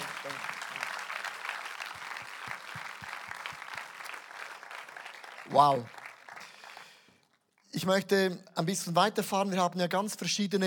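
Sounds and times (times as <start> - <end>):
audience applause: 0.0 - 7.4
speech: 5.5 - 6.0, 7.8 - 10.6.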